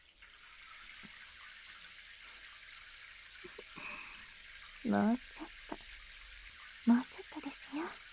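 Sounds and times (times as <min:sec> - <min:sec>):
warm water running while shampoo is rinsed from hair: 0:00.0 - 0:08.1
speech: 0:04.8 - 0:05.6.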